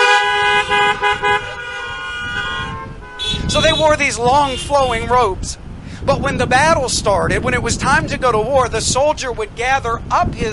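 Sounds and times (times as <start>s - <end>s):
car horns honking: 0.0s - 5.3s
speech: 3.8s - 10.5s.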